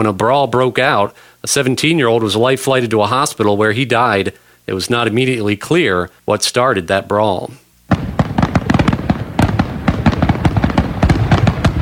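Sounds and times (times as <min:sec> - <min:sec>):
speech: 0:00.0 - 0:07.6
fireworks barrage at a fireworks show finale at the Hancock County Fairgrounds: 0:07.9 - 0:11.8.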